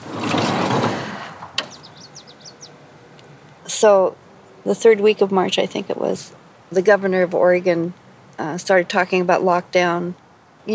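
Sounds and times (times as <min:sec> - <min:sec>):
van sliding door rumbling open along its track: 0:00.0 - 0:02.2
sharp metallic clunk of van sliding door latching: 0:00.2 - 0:01.8
faint chirping outdoors: 0:01.6 - 0:03.8
speech: 0:03.8 - 0:10.7.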